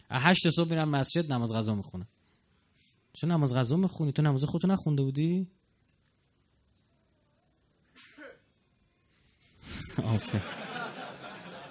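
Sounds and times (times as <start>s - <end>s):
speech: 0.1s - 2.2s, 3.2s - 5.6s, 10.0s - 10.7s
person sneezing: 7.9s - 8.5s
laughter: 9.8s - 11.7s.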